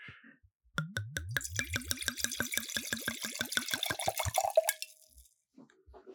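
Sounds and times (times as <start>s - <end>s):
red wine glugging from a bottle into a glass: 0.8s - 5.3s.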